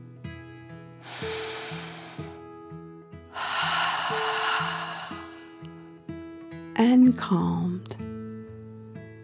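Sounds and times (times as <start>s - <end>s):
deep breath in and out: 1.0s - 2.6s, 3.3s - 6.0s
speech: 6.8s - 8.0s.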